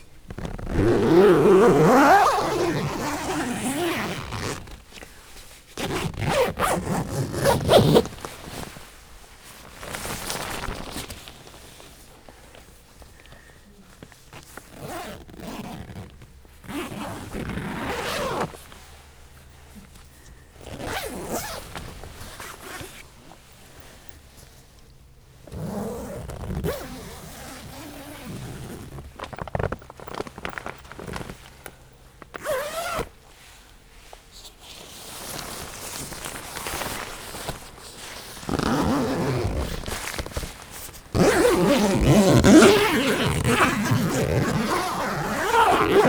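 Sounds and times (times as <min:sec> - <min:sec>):
zipper of a double-door tent being zipped: 0:00.3 - 0:04.8, 0:05.8 - 0:08.8, 0:14.3 - 0:18.7, 0:20.6 - 0:23.4, 0:25.4 - 0:31.4, 0:32.3 - 0:33.2, 0:34.6 - 0:46.0.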